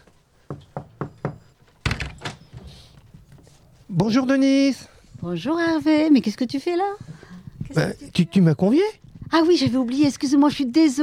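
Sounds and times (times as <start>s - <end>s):
knocking on the door of a home in Gagnac-sur-Serre: 0.4s - 2.5s
speech: 4.0s - 7.1s, 7.7s - 11.0s.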